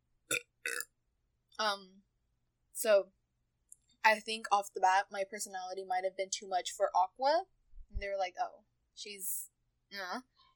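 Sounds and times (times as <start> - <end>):
person burping: 0.3 - 0.9
speech: 1.6 - 2.0, 2.8 - 3.2, 4.0 - 10.3.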